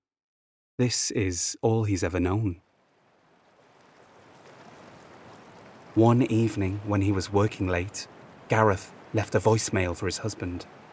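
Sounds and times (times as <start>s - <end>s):
speech: 0.8s - 2.7s, 6.0s - 10.8s
ocean surf: 2.2s - 10.9s.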